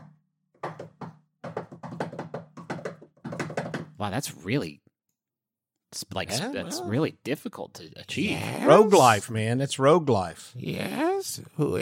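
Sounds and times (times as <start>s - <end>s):
rhythmic secret-knock pattern rapped on a hard surface: 0.0s - 4.0s
speech: 4.0s - 4.8s, 5.9s - 11.7s.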